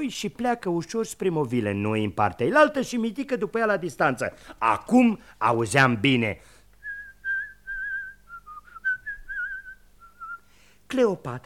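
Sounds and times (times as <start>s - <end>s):
speech: 0.0s - 6.5s, 10.9s - 11.4s
person whistling a short melodic signal: 6.8s - 10.4s.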